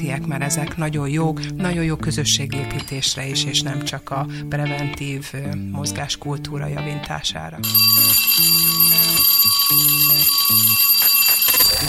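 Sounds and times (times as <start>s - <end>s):
speech: 0.0s - 11.0s
bell-like electronic chime signal tone: 7.6s - 11.8s
bright sustained high tone: 7.6s - 11.8s.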